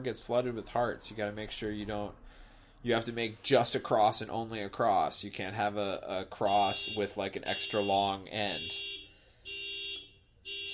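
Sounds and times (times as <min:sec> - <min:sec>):
speech: 0:00.0 - 0:09.0
car alarm going off: 0:06.4 - 0:10.7.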